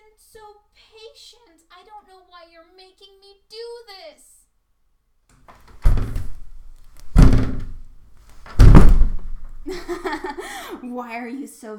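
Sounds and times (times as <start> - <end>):
speech: 0.2 - 4.3, 9.7 - 11.7
heavy thuds on a flimsy door being forced open: 5.7 - 10.0
laughter: 9.7 - 10.8.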